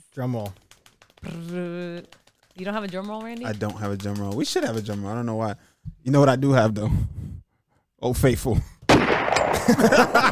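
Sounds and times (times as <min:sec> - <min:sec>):
speech: 0:00.2 - 0:00.6, 0:01.2 - 0:07.2, 0:08.0 - 0:08.8, 0:09.7 - 0:10.3
gunshot sound effect: 0:08.9 - 0:09.7
laughter: 0:09.6 - 0:10.3.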